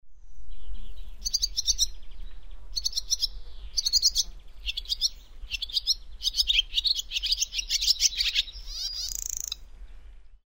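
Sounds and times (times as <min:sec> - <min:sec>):
low rumble: 0:00.0 - 0:06.8
swallow twittering: 0:00.5 - 0:02.1, 0:02.7 - 0:09.6.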